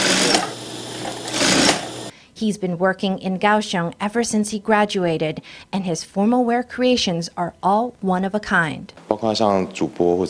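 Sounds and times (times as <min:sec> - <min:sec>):
sewing machine stitching fabric: 0:00.0 - 0:02.1
speech: 0:02.4 - 0:10.2.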